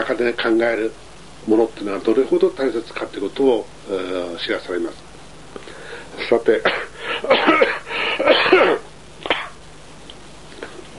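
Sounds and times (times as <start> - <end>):
speech: 0.0 - 5.1, 6.2 - 8.8
coughing: 6.6 - 9.6.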